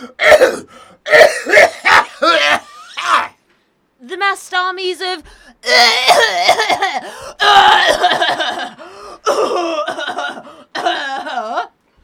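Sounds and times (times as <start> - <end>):
person coughing with something caught in the throat: 0.0 - 2.7, 5.7 - 11.7
speech: 4.7 - 8.2.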